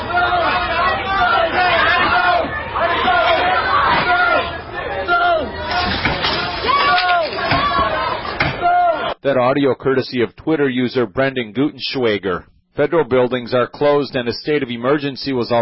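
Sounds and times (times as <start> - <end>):
agitated crowd of protesters shouting at a restaurant: 0.0 - 9.2
tables and chairs thrown crashing on an outdoor restaurant patio: 5.6 - 8.6
speech: 9.3 - 15.5.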